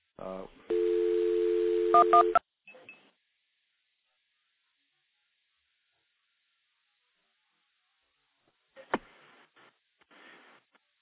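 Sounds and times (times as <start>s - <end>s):
telephone tone signalling as a recording is dialed through stacked trunks: 0.7s - 2.4s.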